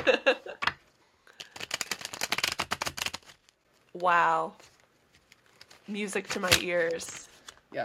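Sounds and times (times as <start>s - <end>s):
tarot cards being riffle shuffled and bridged: 1.3s - 4.0s, 4.6s - 7.6s
speech: 4.0s - 4.7s, 5.9s - 7.8s.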